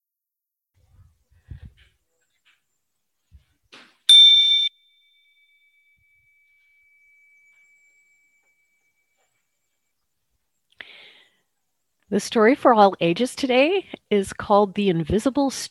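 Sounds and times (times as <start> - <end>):
meditation chime struck and ringing: 4.1 - 10.0
speech: 12.1 - 15.7.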